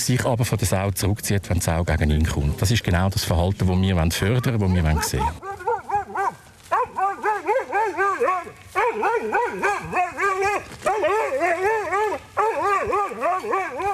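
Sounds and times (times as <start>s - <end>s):
speech: 0.0s - 5.6s
hunting dog barking and yelping at wild boar: 4.1s - 13.9s.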